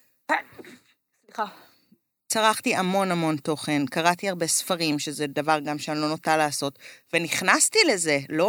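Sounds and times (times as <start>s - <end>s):
person sneezing: 0.3s - 0.9s
speech: 1.4s - 1.6s, 2.3s - 8.4s.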